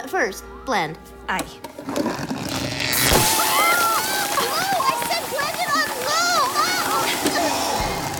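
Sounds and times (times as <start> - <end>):
speech: 0.1 - 2.7
blender running on low mixing ice cream and soda water: 2.3 - 8.1
drink splattering over the counter: 2.4 - 7.8.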